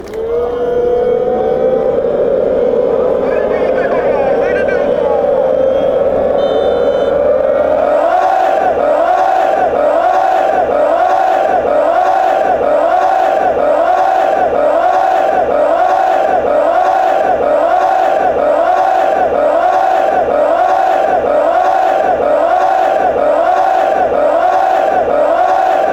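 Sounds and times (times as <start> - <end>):
fans chanting: 0.1 - 25.9.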